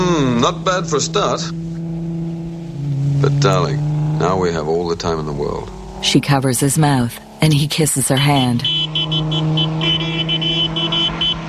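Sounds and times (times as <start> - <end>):
speech: 0.0 - 1.6, 3.2 - 8.9
car driving by with engine humming: 0.2 - 6.4, 8.6 - 11.4.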